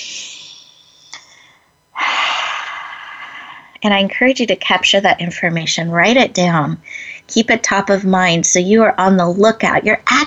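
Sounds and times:
deep breathing during a guided relaxation exercise: 0.0 - 3.8
speech: 3.8 - 10.2.

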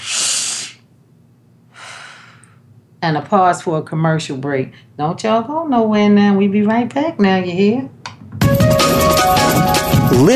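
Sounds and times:
deep breath: 0.0 - 0.8, 1.7 - 2.6
speech: 3.0 - 8.0, 9.3 - 10.3.

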